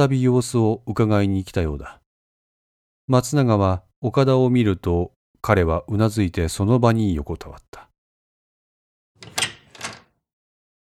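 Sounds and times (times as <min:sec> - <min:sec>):
speech: 0:00.0 - 0:02.0, 0:03.1 - 0:07.9
door opening with scraping, rattling bursts: 0:09.2 - 0:10.2.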